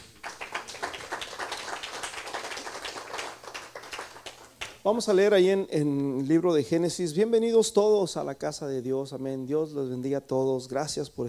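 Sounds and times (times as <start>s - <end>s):
audience applauding: 0.0s - 4.8s
speech: 4.8s - 11.2s.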